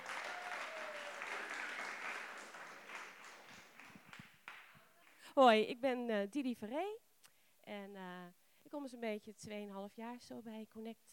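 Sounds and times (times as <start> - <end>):
audience applauding: 0.0 - 5.2
speech: 5.4 - 7.0, 7.7 - 11.1.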